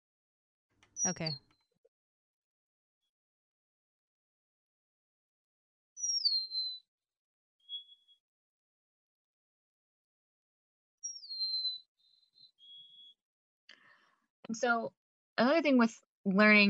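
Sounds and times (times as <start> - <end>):
speech: 1.0 - 1.5, 14.5 - 16.6
Golden-crowned Sparrow song: 6.0 - 6.8, 7.6 - 8.2, 11.0 - 13.2.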